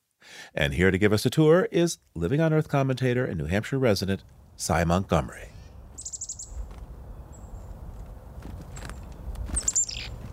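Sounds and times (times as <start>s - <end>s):
speech: 0.5s - 5.6s
low wind-like rumble: 4.2s - 10.3s
chickadee scolding winter call: 6.0s - 6.7s, 9.6s - 10.2s.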